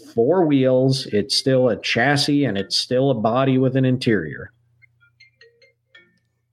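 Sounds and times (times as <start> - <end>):
speech: 0.2 - 4.6
electronic phone ringtone: 4.8 - 6.4.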